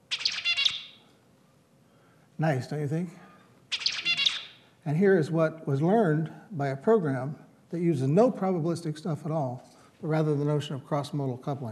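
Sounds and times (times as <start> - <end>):
zebra finch singing mating song: 0.0 - 1.0, 3.7 - 4.6
speech: 2.4 - 3.3, 4.8 - 11.7.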